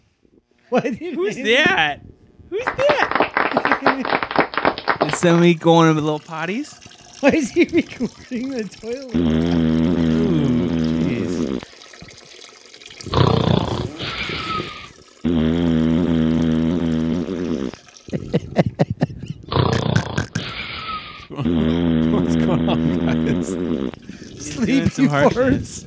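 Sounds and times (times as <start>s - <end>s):
laughter: 0.7s - 1.7s, 2.6s - 5.4s, 7.2s - 9.0s, 18.1s - 19.5s, 20.1s - 25.8s
speech: 0.7s - 3.1s, 3.8s - 4.3s, 5.0s - 9.6s, 25.0s - 25.8s
long low buzzy farting: 2.7s - 5.5s, 8.8s - 12.2s, 12.9s - 25.2s.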